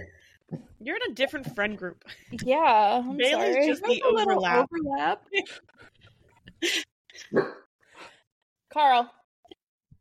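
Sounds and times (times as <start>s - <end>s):
speech: 0.0s - 5.9s, 6.6s - 7.6s, 8.7s - 9.2s
dog barking and yipping: 7.3s - 7.6s.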